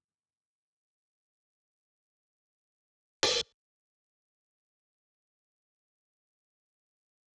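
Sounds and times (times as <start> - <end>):
open hi-hat for 130 bpm pop EDM drums: 3.2 - 3.5.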